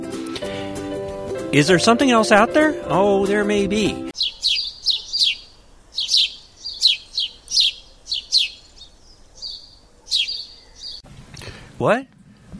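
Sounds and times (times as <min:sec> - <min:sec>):
speech: 0:01.5 - 0:04.1, 0:11.8 - 0:12.1
small bird chirping in quick bright bursts: 0:04.2 - 0:11.0.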